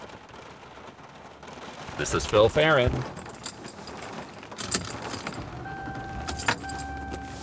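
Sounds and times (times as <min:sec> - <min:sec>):
car driving along in the rain: 0:00.0 - 0:07.4
speech: 0:02.0 - 0:03.2
rattles and jingles: 0:03.0 - 0:05.5.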